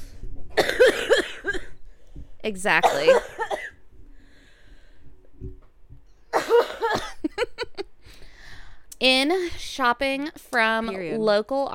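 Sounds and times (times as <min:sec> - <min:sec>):
rough phlegmy smoker's cough: 0:00.6 - 0:01.8, 0:02.8 - 0:03.8, 0:06.3 - 0:07.4
speech: 0:02.4 - 0:03.4, 0:09.0 - 0:11.7.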